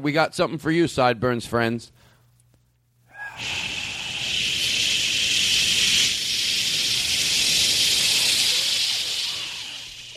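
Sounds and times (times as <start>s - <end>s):
speech: 0.0s - 2.0s
people hissing into microphones: 3.2s - 10.1s.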